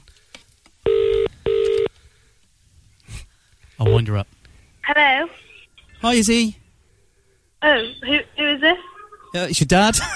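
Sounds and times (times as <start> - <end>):
faint room noise: 0.0 - 10.1
telephone ringback tone heard down the line: 0.8 - 1.9
speech: 3.8 - 5.4, 6.0 - 6.6, 7.6 - 10.1.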